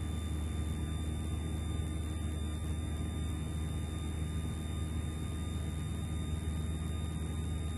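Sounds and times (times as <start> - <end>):
small airplane engine droning during a short-field takeoff: 0.0 - 7.7.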